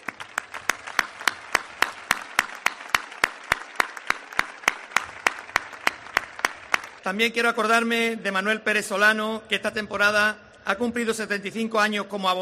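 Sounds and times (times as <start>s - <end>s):
crowd applause in memory of the deceased: 0.0s - 7.0s
steady regular beat of loud sharp claps: 0.0s - 7.2s
speech: 7.1s - 12.4s.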